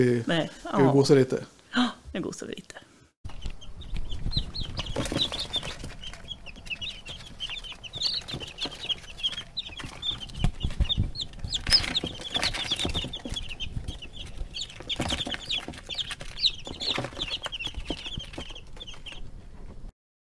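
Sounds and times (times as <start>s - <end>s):
speech: 0.0s - 2.9s
many baby chicks peeping in a brooder box: 3.3s - 19.8s
rustling and scratching in a brooder box: 3.3s - 19.9s.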